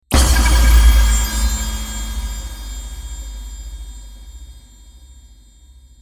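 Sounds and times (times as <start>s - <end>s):
magic surprise effect: 0.1s - 3.1s.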